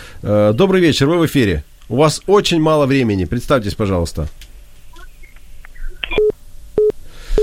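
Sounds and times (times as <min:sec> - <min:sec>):
speech: 0:00.2 - 0:04.4
telephone line beeps from a failed phone call: 0:05.0 - 0:07.4.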